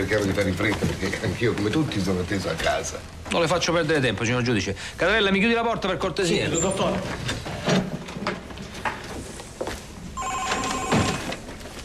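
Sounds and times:
speech: 0.0 - 7.8
telephone ringing with electronic bell tone: 10.2 - 11.4.

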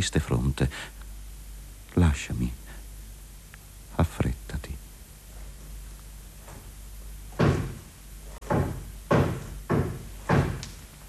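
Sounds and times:
speech: 0.0 - 1.0, 2.0 - 2.6, 4.0 - 4.8
heavy knocking on a wooden door: 7.3 - 10.6.

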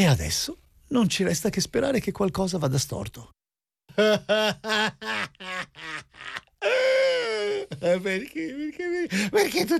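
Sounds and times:
speech: 0.0 - 3.4, 4.0 - 9.7
person sobbing and wailing: 3.9 - 9.6.

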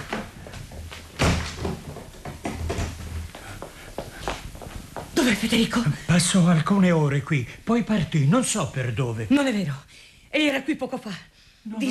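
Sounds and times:
heavy thump of a door being shut: 1.1 - 3.1
speech: 5.2 - 11.8.

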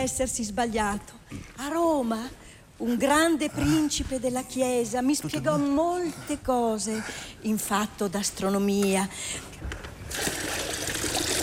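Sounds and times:
speech: 0.0 - 10.6
water being poured: 10.1 - 11.4.

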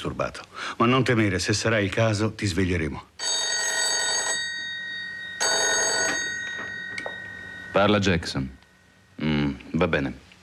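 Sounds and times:
speech: 0.0 - 3.4, 7.8 - 8.6, 9.2 - 10.2
telephone bell ringing: 3.2 - 8.4.

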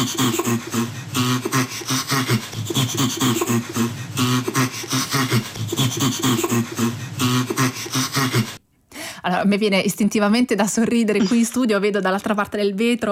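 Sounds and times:
chimpanzee laughing in fast breathy panting bursts: 0.0 - 8.6
speech: 0.0 - 8.6, 9.2 - 13.1.

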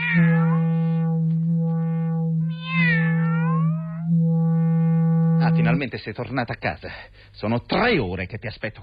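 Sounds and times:
cat meowing: 0.0 - 0.6, 2.5 - 3.7
steady low hum: 0.0 - 6.0
speech: 5.6 - 8.8.

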